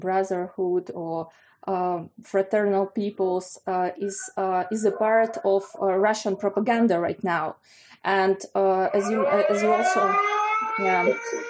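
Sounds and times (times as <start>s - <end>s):
speech: 0.0s - 11.4s
air raid sirens wailing: 3.9s - 6.7s, 8.7s - 11.4s.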